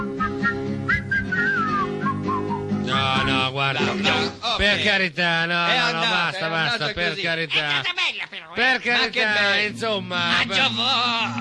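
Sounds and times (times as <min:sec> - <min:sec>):
person whistling a lilting tune: 0:00.0 - 0:03.4
speech: 0:03.4 - 0:11.3.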